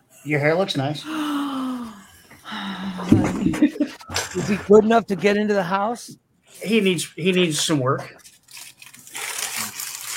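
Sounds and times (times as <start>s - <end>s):
speech: 0.2s - 1.2s, 3.1s - 8.2s
paper crinkling while handled at the microphone: 8.2s - 10.1s.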